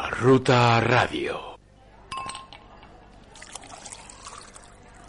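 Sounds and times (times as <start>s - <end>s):
speech: 0.2s - 1.6s
bright glassy clink of a wine glass: 2.1s - 2.9s
liquid pouring into a wine glass: 3.2s - 5.0s.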